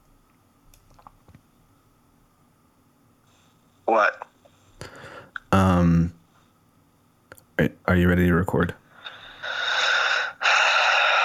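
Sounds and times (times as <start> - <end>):
speech: 3.9 - 4.2, 7.6 - 8.8
deep heavy breathing into a telephone: 4.5 - 5.4, 8.9 - 11.2.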